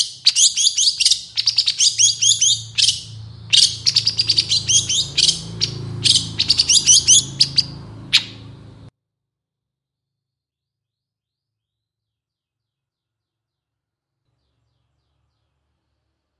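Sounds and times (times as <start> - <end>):
long-tailed shrike song of harsh chattering notes and thin whistles: 0.0 - 8.9.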